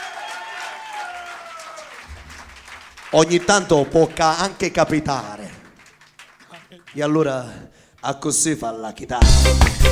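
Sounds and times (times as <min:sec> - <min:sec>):
audience applauding a guitarist: 0:00.0 - 0:07.4
speech: 0:03.1 - 0:05.4, 0:06.9 - 0:09.9.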